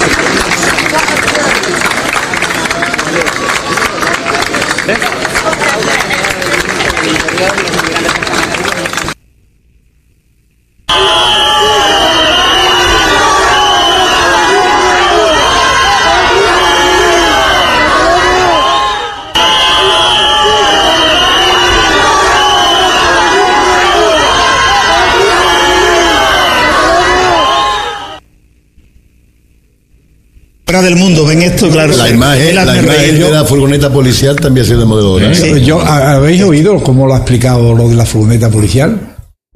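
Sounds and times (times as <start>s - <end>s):
large crowd applauding and cheering for a government minister: 0.0s - 9.2s, 10.9s - 28.2s
noisy crowd whistling shrilly at a minister: 10.9s - 28.2s
overlapping shouts from a crowd: 10.9s - 28.2s
speech: 30.8s - 39.5s.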